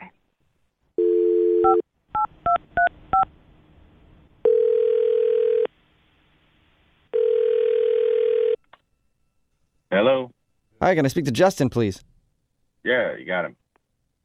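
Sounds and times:
telephone dial tone: 1.0 - 1.8, 4.4 - 5.7, 7.1 - 8.6
long steady telephone ringing tones: 1.0 - 2.9, 4.4 - 5.7, 7.1 - 8.6
speech: 10.8 - 12.1, 12.8 - 13.6.

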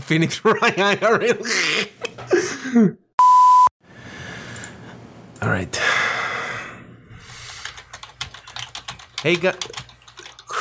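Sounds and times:
speech: 0.1 - 3.0, 5.4 - 6.0, 9.2 - 9.8
typing on a mechanical keyboard: 7.4 - 10.5.

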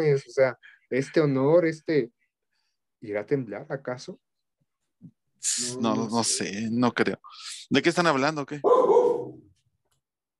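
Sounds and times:
speech: 0.0 - 2.2, 3.0 - 4.2, 5.0 - 9.0
single loud dog bark: 8.6 - 9.4.

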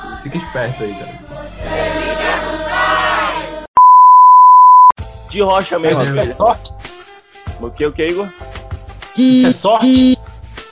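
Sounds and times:
speech: 0.2 - 2.7, 5.3 - 6.7, 7.6 - 8.5, 9.2 - 10.2
phone notification electronic beep: 3.8 - 5.0, 9.2 - 10.2.

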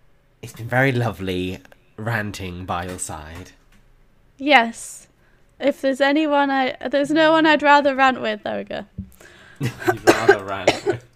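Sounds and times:
speech: 0.5 - 3.6, 4.4 - 11.0
hoarse coughing: 9.7 - 11.1.

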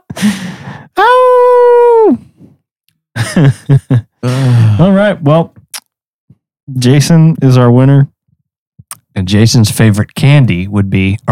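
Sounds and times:
speech: 0.2 - 0.7, 3.4 - 5.6, 6.7 - 8.1, 9.2 - 11.2
man's voice imitating werewolf howl: 1.0 - 2.2.

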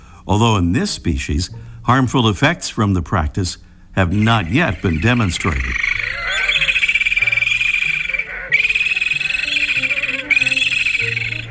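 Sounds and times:
speech: 0.3 - 6.2
parakeet auklet calls: 4.0 - 11.5.

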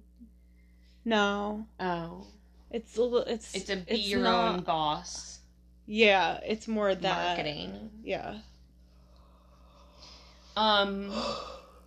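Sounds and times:
speech: 1.0 - 8.5, 10.6 - 11.6
person yawning with breathy voiced groan: 11.0 - 11.8.

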